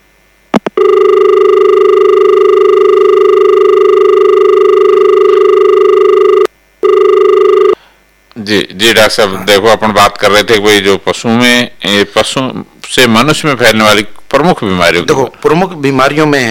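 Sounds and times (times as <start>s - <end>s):
telephone ringing for an incoming call from a listener: 0.8s - 7.8s
speech: 8.5s - 16.4s.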